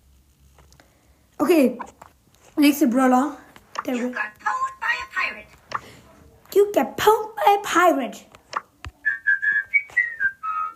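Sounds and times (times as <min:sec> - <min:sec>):
speech: 0:01.4 - 0:02.0, 0:02.6 - 0:04.4, 0:06.5 - 0:08.3
person whistling a short shaky tune: 0:09.0 - 0:10.7.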